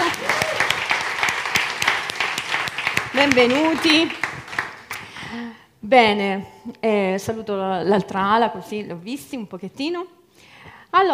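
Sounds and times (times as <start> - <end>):
crowd applauding: 0.0 - 5.4
speech: 3.2 - 4.2, 5.3 - 10.2, 10.9 - 11.1.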